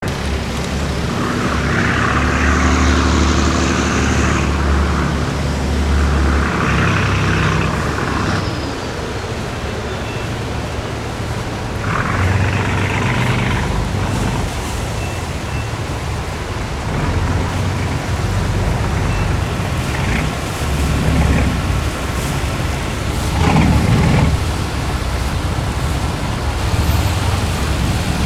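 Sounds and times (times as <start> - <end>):
boat: 0.0 - 28.2.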